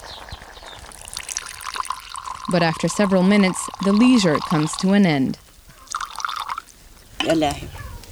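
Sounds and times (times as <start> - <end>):
water pouring into a pot for morning tea: 0.0 - 4.8, 5.9 - 6.7
speech: 2.5 - 5.4, 7.3 - 7.8.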